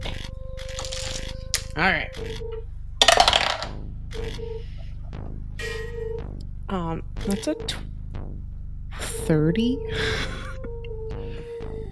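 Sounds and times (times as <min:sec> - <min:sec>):
dice tumbling out of a dice tower during a tabletop role-playing game: 0:00.7 - 0:01.7, 0:03.0 - 0:03.7
speech: 0:01.8 - 0:02.7, 0:04.2 - 0:05.8, 0:06.7 - 0:08.0, 0:09.2 - 0:10.4.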